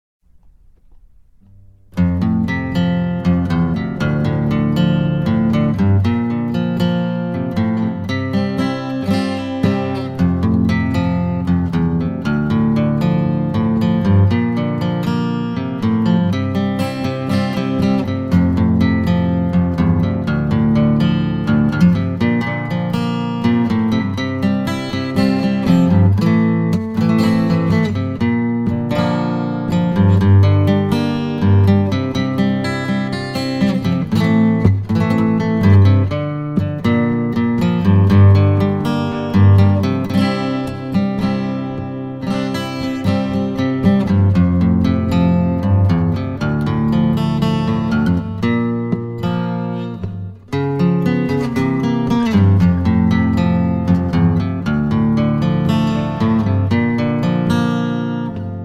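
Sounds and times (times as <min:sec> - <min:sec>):
solo guitar: 0:00.2 - 0:58.6.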